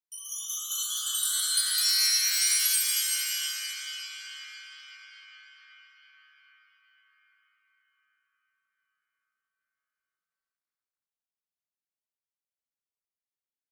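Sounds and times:
wind chimes with wide reverb: 0.1s - 7.8s.

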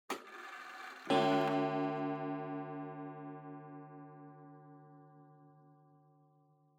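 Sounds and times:
short pendulum clock chime: 1.1s - 4.3s.

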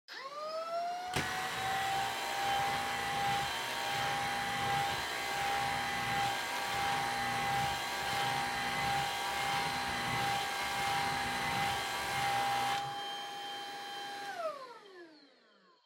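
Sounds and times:
vacuum cleaner vacuuming floor on low setting: 0.1s - 15.2s.

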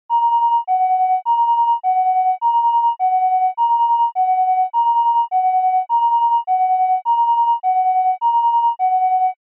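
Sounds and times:
dry ambulance siren: 0.1s - 9.4s.

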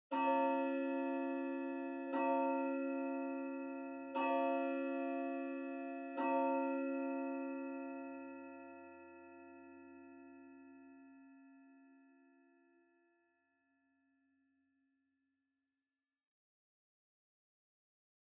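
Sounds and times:
far low pendulum clock chime: 0.1s - 10.3s.

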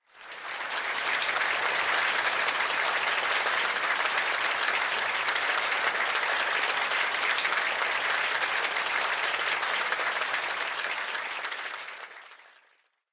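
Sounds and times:
crowd applause: 0.0s - 12.9s.

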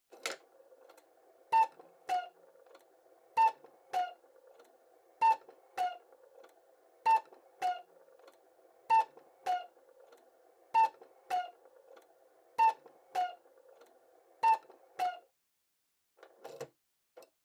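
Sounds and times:
cuckoo clock calling: 1.5s - 6.1s, 7.0s - 9.8s, 10.7s - 11.6s, 12.6s - 13.4s.

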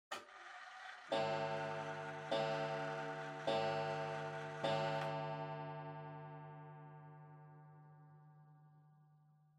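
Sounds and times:
pendulum clock chime: 0.8s - 7.1s.

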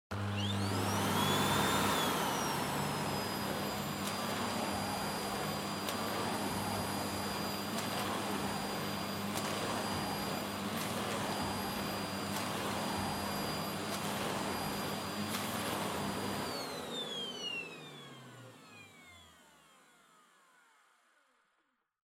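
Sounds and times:
vacuum cleaner vacuuming floor, soft and low: 0.1s - 21.2s.

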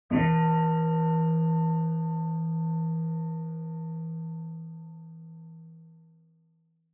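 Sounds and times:
high-pitched bonsho temple bell ringing: 0.1s - 5.5s.

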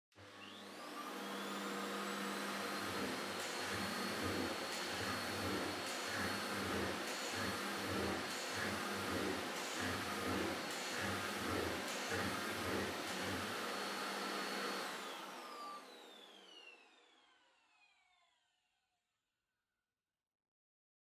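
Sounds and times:
vacuum cleaner on wooden floor: 0.1s - 18.2s.

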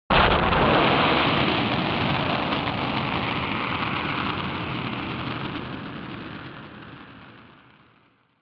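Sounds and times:
long high retro anime explosion effect: 0.1s - 8.2s.

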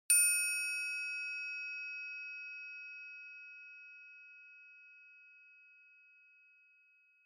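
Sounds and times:
single long triangle note: 0.1s - 5.3s.

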